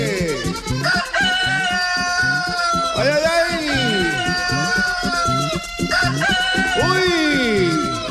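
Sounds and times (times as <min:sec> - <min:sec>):
laughter: 0:00.0 - 0:08.0
rooster crowing: 0:00.0 - 0:08.0.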